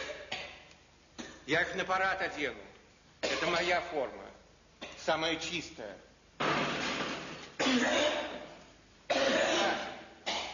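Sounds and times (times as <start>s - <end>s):
person coughing harshly: 0.0s - 0.6s, 7.6s - 10.5s
speech: 1.5s - 2.7s, 3.4s - 4.2s, 5.0s - 6.1s, 7.7s - 8.2s.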